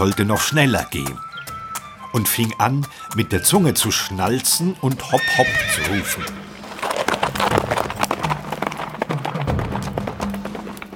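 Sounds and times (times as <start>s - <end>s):
speech: 0.0s - 1.3s, 2.1s - 6.4s
horse hooves trotting: 0.0s - 10.9s.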